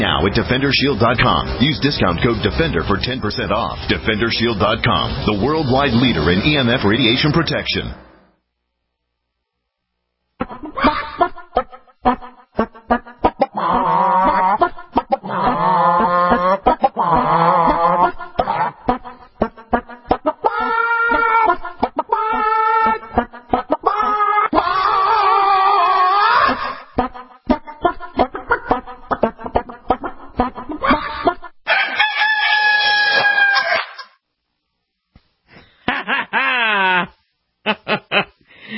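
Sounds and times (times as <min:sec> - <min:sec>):
speech: 0:00.0 - 0:08.1, 0:12.0 - 0:12.3
chickens clucking and squawking to a musical melody: 0:10.4 - 0:34.2
laughter: 0:35.9 - 0:38.4.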